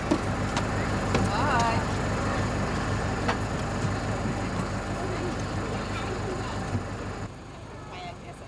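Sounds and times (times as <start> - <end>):
bus engine idling with a steady low rumble: 0.0 - 8.4.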